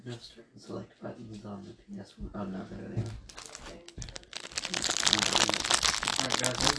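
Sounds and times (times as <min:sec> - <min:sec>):
speech: 0:00.1 - 0:03.4, 0:04.7 - 0:06.7
Pop-Tart wrapper crinkling as ASMR: 0:03.3 - 0:06.7.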